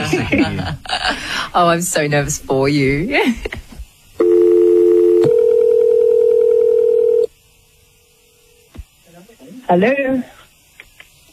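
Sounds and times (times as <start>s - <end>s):
laughter: 0.0s - 1.2s
speech: 0.1s - 3.6s, 9.7s - 10.4s
landline telephone ringing tone: 4.2s - 7.3s.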